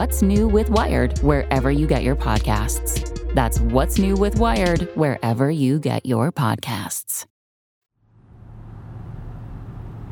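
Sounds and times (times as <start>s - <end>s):
speech: 0.0s - 7.3s
car engine and road rumble while driving: 8.1s - 10.1s.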